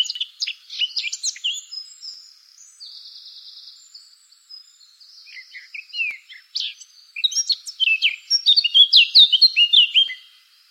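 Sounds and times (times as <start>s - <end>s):
Eurasian blackcap singing: 0.0s - 10.4s.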